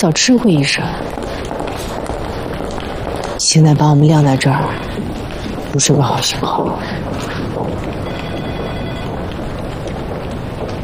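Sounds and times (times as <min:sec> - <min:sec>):
speech: 0:00.0 - 0:01.5, 0:03.4 - 0:08.0
loud noise: 0:00.0 - 0:10.8
telephone ringing: 0:08.0 - 0:10.0.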